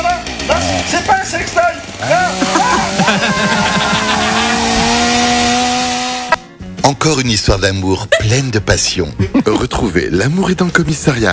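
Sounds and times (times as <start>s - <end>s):
chainsaw running: 0.0s - 7.0s
laughter: 1.9s - 5.5s, 7.8s - 10.1s
speech: 6.8s - 11.3s.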